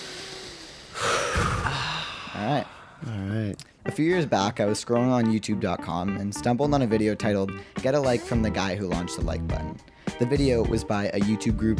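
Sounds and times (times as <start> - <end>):
deep breath inhale: 0.9 - 3.3, 9.8 - 10.2
speech: 2.4 - 11.7.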